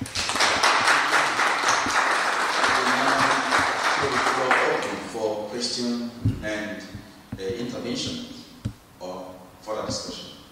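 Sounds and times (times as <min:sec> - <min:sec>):
audience applauding a speaker after a talk on creationism and the Big Bang: 0:00.0 - 0:04.9
speech: 0:05.2 - 0:08.4, 0:09.9 - 0:10.2.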